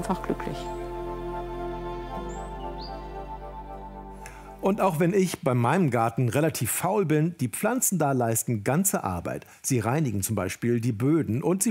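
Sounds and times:
speech: 0.0 - 0.8, 4.6 - 11.6
sparrows chirping in a hedge: 2.0 - 3.2.

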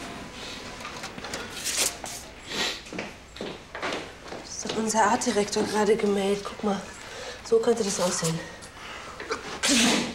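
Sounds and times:
speech: 4.7 - 8.6
person sneezing: 9.3 - 10.1.

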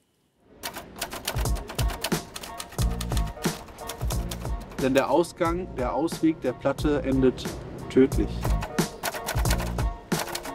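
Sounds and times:
typewriter clattering: 0.6 - 5.1, 8.5 - 10.5
speech: 4.8 - 8.5.

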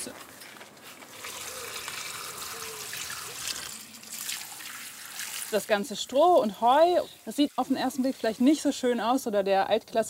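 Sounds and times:
speech: 0.0 - 0.3, 5.5 - 10.0
water pouring from a watering can onto tomato plants: 1.1 - 8.7.

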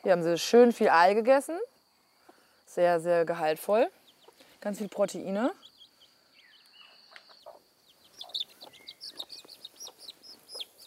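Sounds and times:
speech: 0.0 - 1.7, 2.7 - 4.0, 4.6 - 5.6
faint chirping: 0.0 - 10.8
hen clucking: 6.8 - 10.8.

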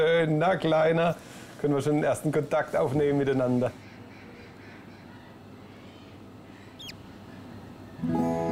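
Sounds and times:
speech: 0.0 - 3.8
Spix's macaw chick peeping inside egg: 3.8 - 8.1.

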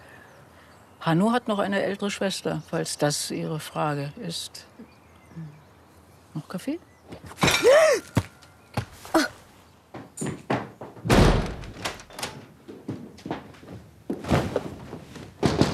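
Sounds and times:
speech: 1.0 - 5.6, 6.4 - 8.1
knocks and thumps: 9.9 - 15.7
heavy door slamming shut: 10.5 - 12.4.

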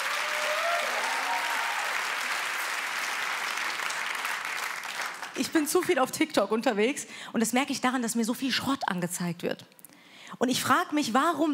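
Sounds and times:
crowd applauding: 0.0 - 5.4
speech: 5.4 - 9.8, 10.4 - 11.5.

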